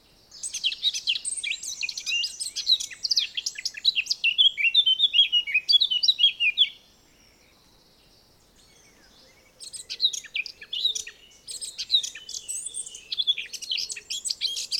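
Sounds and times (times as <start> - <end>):
Eurasian blackcap Sylvia atricapilla warbling song: 0.3 - 6.8, 9.6 - 14.7.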